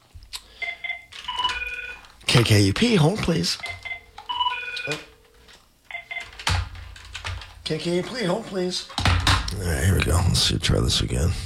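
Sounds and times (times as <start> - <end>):
telephone ringing with electronic warbling tones: 0.6 - 2.1, 3.6 - 5.2, 5.9 - 6.4
speech: 2.4 - 3.8, 7.7 - 11.4.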